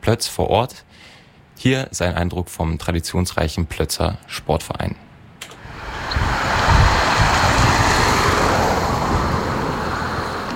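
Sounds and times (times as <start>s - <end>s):
speech: 0.1s - 5.0s
outdoor wind rushing on a mild sunny evening in Oberplötz near Halle: 5.6s - 10.4s.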